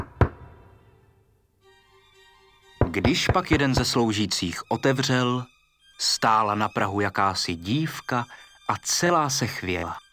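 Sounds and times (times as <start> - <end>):
knocking on a palace gate: 2.8 - 4.1
speech: 3.0 - 10.0.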